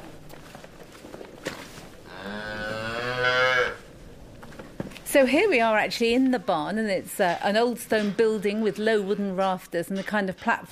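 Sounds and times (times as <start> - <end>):
dairy cow mooing in an old stone barn on a dairy farm: 2.1 - 3.8
speech: 5.2 - 10.7.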